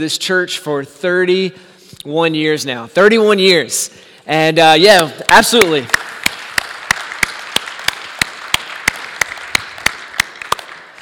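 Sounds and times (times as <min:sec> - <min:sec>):
speech: 0:00.0 - 0:06.0
congregation clapping in a steady rhythm: 0:05.0 - 0:11.0
scattered applause from a large crowd: 0:05.8 - 0:11.0.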